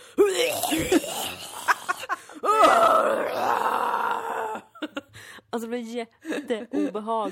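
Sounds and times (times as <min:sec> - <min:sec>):
voice imitating a man's anguished screams and groans: 0:00.1 - 0:04.9
speech: 0:05.7 - 0:07.3.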